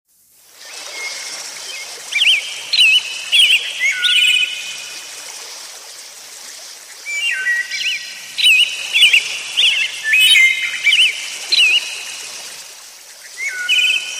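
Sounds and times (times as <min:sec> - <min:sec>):
background hiss: 0:00.1 - 0:14.1
bird twittering: 0:01.7 - 0:04.8, 0:07.1 - 0:12.2, 0:13.4 - 0:14.1.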